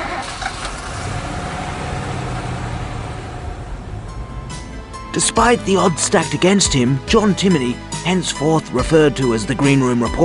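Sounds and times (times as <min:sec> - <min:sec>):
car engine running: 0:00.0 - 0:06.9
speech: 0:05.2 - 0:10.2.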